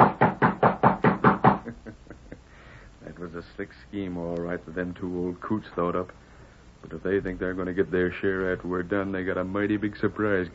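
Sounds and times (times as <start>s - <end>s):
knocking on a ranch house door: 0.0s - 1.7s
speech: 3.7s - 10.5s.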